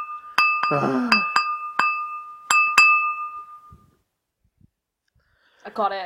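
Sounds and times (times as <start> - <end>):
glass tapped ringing: 0.0 - 3.8.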